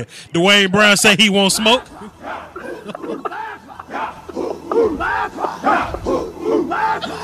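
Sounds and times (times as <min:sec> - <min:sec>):
speech: 0:00.0 - 0:02.2
other voices shouting: 0:01.6 - 0:07.2
laughter: 0:01.8 - 0:07.2.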